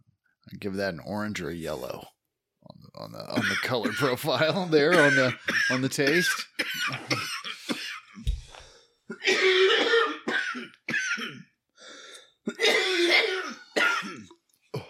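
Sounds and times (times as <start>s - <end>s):
speech: 0.5s - 2.2s, 3.0s - 7.3s
person coughing harshly from smoking cannabis: 3.4s - 4.2s, 4.9s - 8.2s, 9.1s - 11.5s, 12.4s - 14.8s
throat clearing: 12.5s - 14.8s.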